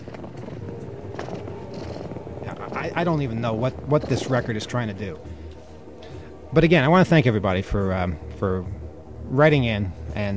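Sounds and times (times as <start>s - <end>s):
motor engine running: 0.0s - 5.6s
speech: 2.8s - 5.4s, 6.5s - 10.3s.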